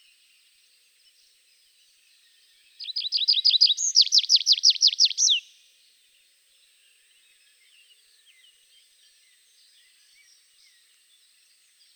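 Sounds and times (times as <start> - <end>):
tree pipit song: 2.8 - 5.6.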